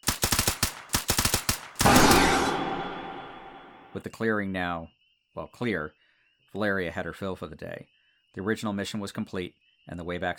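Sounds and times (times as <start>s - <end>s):
silenced gunfire bursts from two weapons: 0.0s - 3.8s
speech: 4.0s - 10.3s.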